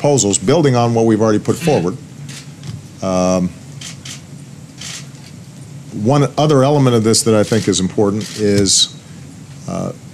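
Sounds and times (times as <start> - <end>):
speech: 0.0 - 2.1, 3.0 - 4.0, 6.0 - 9.1, 9.7 - 10.1
low steady hum: 0.0 - 10.1
person sneezing in the audience: 1.6 - 2.0.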